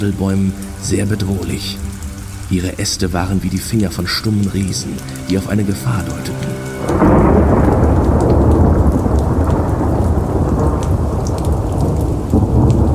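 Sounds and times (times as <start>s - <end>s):
speech: 0.0s - 7.3s
heavy rain pouring: 0.0s - 12.9s
deep thunder rumbling: 6.3s - 12.9s.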